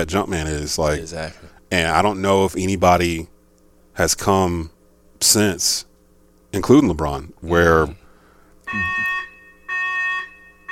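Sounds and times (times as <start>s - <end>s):
speech: 0.0s - 3.3s, 4.0s - 5.9s, 6.5s - 8.0s, 8.7s - 9.1s
fire alarm beeping: 8.7s - 10.6s.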